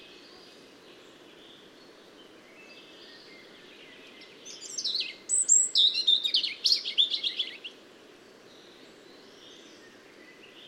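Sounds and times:
European robin (Erithacus rubecula) singing high thin whistles and tinkling trills: 4.5 - 7.6.

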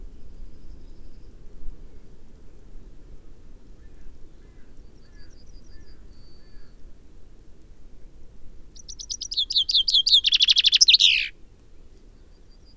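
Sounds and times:
Common Chaffinch Fringilla coelebs singing: 8.8 - 11.3.

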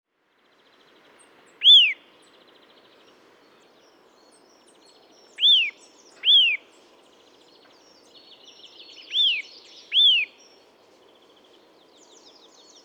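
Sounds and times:
Eurasian nuthatch Sitta europaea calling with clear arched whistles: 5.4 - 6.6, 9.1 - 10.3.

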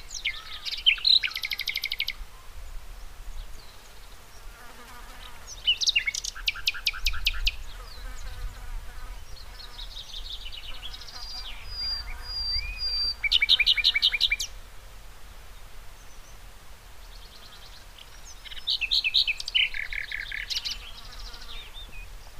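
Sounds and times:
common nightingale Luscinia megarhynchos singing: 0.0 - 2.8, 5.3 - 8.6, 9.2 - 14.6, 17.0 - 22.3
low background noise: 0.0 - 22.3.

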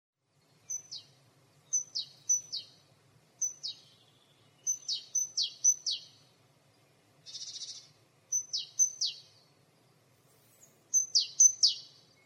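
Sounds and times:
great tit calls: 0.7 - 2.8, 3.4 - 6.3, 7.2 - 9.5, 10.6 - 12.2.

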